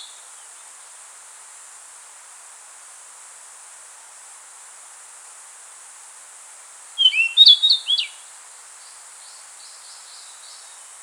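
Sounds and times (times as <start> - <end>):
faint hiss: 0.0 - 11.0
rufous-tailed flycatcher song: 7.0 - 8.1.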